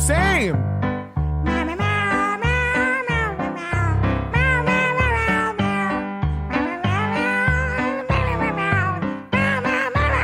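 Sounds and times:
speech: 0:00.1 - 0:00.8
cat meowing: 0:02.0 - 0:06.0, 0:06.6 - 0:10.2.

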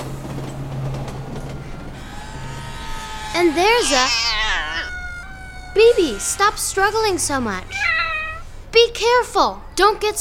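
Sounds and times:
elevated L train rolling past: 0:00.0 - 0:07.8
speech: 0:03.4 - 0:04.4, 0:05.8 - 0:07.9, 0:08.8 - 0:10.1.

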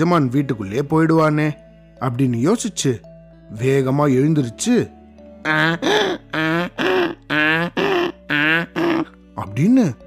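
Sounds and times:
speech: 0:00.0 - 0:06.4, 0:09.6 - 0:10.0
person imitating a donkey braying: 0:05.4 - 0:09.2.

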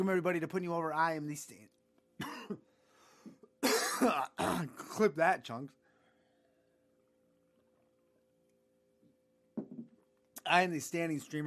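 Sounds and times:
speech: 0:00.0 - 0:03.4, 0:04.0 - 0:05.8, 0:10.4 - 0:11.4
harsh coughing: 0:02.2 - 0:02.7, 0:03.6 - 0:05.1.

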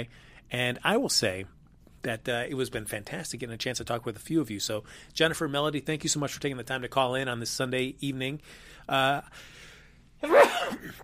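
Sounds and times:
speech: 0:00.0 - 0:11.0
sneeze: 0:10.2 - 0:11.0.

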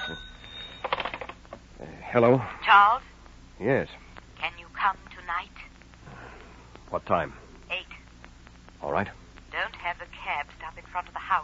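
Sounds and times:
old-fashioned telephone bell ringing: 0:00.0 - 0:01.3
low hiss: 0:00.0 - 0:11.4
speech: 0:00.1 - 0:00.3, 0:02.1 - 0:04.0, 0:06.9 - 0:07.4, 0:08.9 - 0:09.2.

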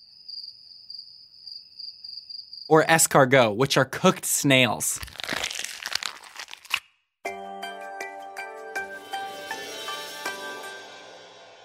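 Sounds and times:
crickets chirping: 0:00.0 - 0:02.7
speech: 0:02.7 - 0:05.3.

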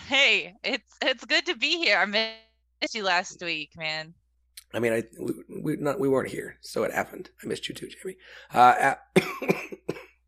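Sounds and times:
speech: 0:00.1 - 0:10.1
person coughing raspily: 0:09.2 - 0:10.2.

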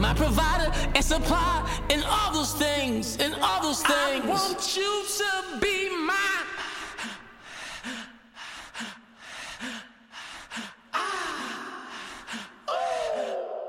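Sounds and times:
speech: 0:00.1 - 0:06.6
panting breaths in a song: 0:06.8 - 0:12.7.

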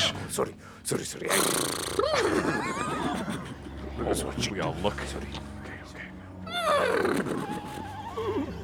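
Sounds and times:
horse whinnying: 0:00.0 - 0:00.3, 0:01.4 - 0:03.6, 0:06.5 - 0:08.6
speech: 0:00.4 - 0:05.5, 0:06.7 - 0:07.6
laughter: 0:02.0 - 0:05.5.

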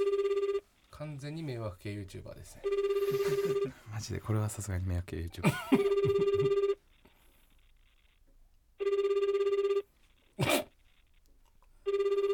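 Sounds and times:
mobile phone outgoing call ringback tone: 0:00.0 - 0:00.8, 0:02.6 - 0:03.8, 0:05.8 - 0:06.8, 0:08.8 - 0:10.2, 0:11.8 - 0:12.3
speech: 0:01.0 - 0:06.7
laughter: 0:03.0 - 0:03.9, 0:05.4 - 0:06.5.

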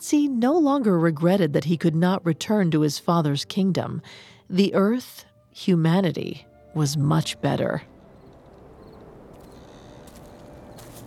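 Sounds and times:
speech: 0:00.0 - 0:07.9
soft swishy footsteps through tall grass at night: 0:09.4 - 0:11.0.

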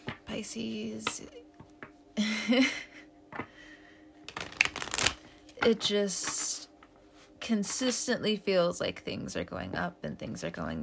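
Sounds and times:
speech: 0:00.4 - 0:01.4, 0:02.2 - 0:03.5, 0:05.6 - 0:06.6, 0:07.5 - 0:10.8
tarot cards being shuffled: 0:04.3 - 0:06.8.

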